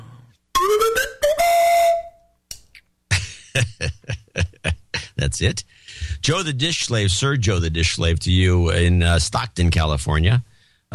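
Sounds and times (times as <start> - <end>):
slide whistle swooping down and up: 0.6 - 2.4
speech: 5.3 - 10.9.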